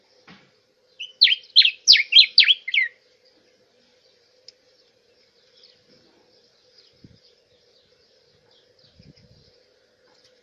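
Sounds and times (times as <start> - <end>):
diuca finch whistled song: 1.0 - 3.0.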